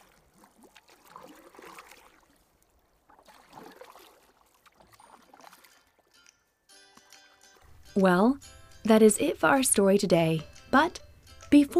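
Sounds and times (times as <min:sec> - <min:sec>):
oars rowing a boat through water: 0:00.0 - 0:06.3
speech: 0:08.0 - 0:11.7.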